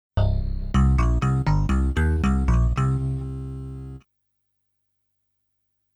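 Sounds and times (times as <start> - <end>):
resynthesized samples: 0.2 - 4.0.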